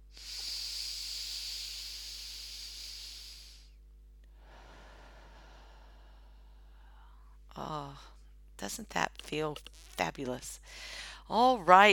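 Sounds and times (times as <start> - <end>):
deep breath in through the nose and out through the mouth: 0.0 - 7.4, 10.6 - 11.3
speech: 7.6 - 11.9.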